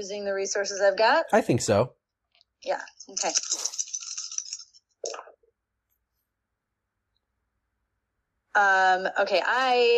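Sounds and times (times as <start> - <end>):
speech: 0.0 - 2.0, 2.6 - 3.8, 8.6 - 9.9
dice shaken during a tabletop role-playing game: 3.1 - 4.7
dice clattering on a hard surface: 3.2 - 5.2.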